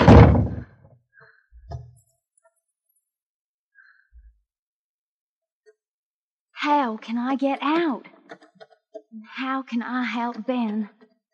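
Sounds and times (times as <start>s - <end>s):
heavy door slamming shut with a booming thud: 0.0s - 0.7s
speech: 6.6s - 8.4s, 9.1s - 11.0s.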